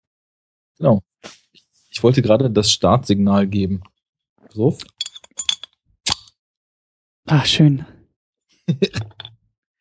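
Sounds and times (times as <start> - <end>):
speech: 0.8 - 1.4, 2.0 - 3.9, 4.5 - 5.0, 7.3 - 8.0, 8.7 - 9.2
glasses clinking in a toast: 4.9 - 5.7
laughter: 8.7 - 9.2.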